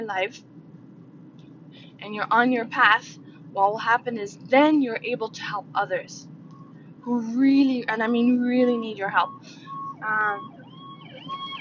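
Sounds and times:
speech: 0:00.0 - 0:00.6, 0:01.7 - 0:06.3, 0:07.0 - 0:10.6
hum: 0:00.0 - 0:11.5
ambulance siren wailing past: 0:08.6 - 0:11.5.

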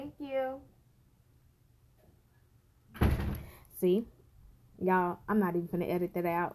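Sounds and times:
speech: 0:00.1 - 0:00.7, 0:03.8 - 0:04.2, 0:04.8 - 0:06.5
door shutting: 0:02.9 - 0:03.6.

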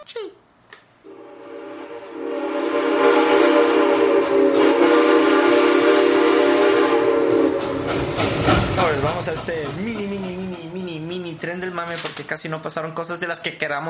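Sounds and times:
loud train horn blaring: 0:01.0 - 0:08.1
rumbling rail noise: 0:01.0 - 0:13.3
speech: 0:11.8 - 0:13.8.

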